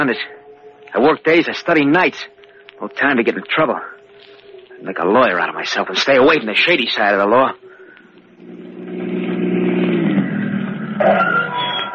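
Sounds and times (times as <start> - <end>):
speech: 0.0 - 4.0, 4.8 - 7.6
brief higher mechanical whine: 0.0 - 11.9
car engine revving as vehicle drives closer: 8.0 - 11.9.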